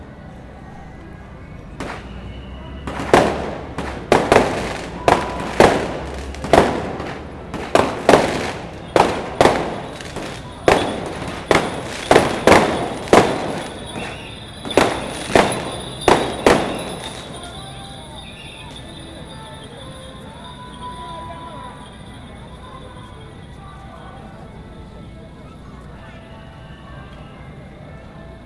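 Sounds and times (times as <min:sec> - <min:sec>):
faint voices: 0:00.0 - 0:28.4
firecrackers bursting at a temple festival street celebration: 0:01.8 - 0:21.0.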